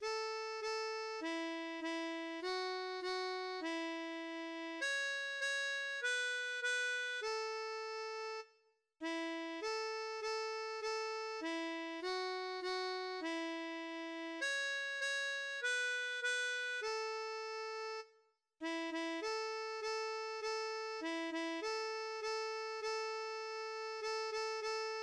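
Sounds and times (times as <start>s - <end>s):
harmonica playing a folk tune: 0.0s - 25.0s.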